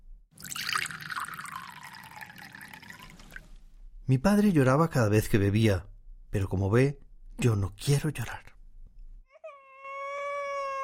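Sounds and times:
waitress pouring a drink into a glass: 0:00.4 - 0:03.6
speech: 0:04.1 - 0:08.5.

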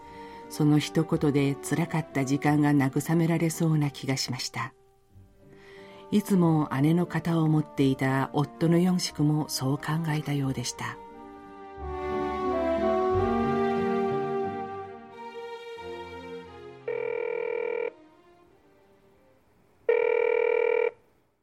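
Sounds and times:
soft music: 0:00.0 - 0:19.9
speech: 0:00.5 - 0:04.8, 0:06.1 - 0:11.0
buzzy ringback tones through the earpiece of an outgoing call: 0:16.9 - 0:18.0, 0:19.9 - 0:21.0.

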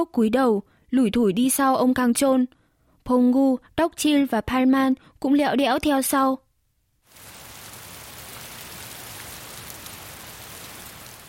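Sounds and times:
speech: 0:00.0 - 0:06.4
steady rain pattering on a surface: 0:07.1 - 0:11.2.

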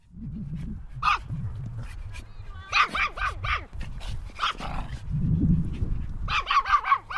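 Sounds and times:
low rumbling outdoor background at a hillside dog park: 0:00.0 - 0:07.1
dogs barking at a hillside dog park: 0:01.0 - 0:01.3, 0:02.7 - 0:03.8, 0:04.4 - 0:04.9, 0:06.3 - 0:07.1
dogs yipping at a hillside dog park: 0:01.0 - 0:01.3, 0:02.3 - 0:03.8, 0:06.3 - 0:07.1.

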